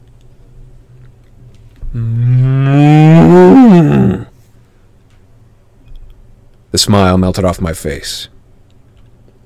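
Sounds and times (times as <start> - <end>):
quiet low rumbling background: 0.0 - 9.4
speech: 2.0 - 2.3, 6.8 - 8.4
cow mooing: 2.0 - 4.3.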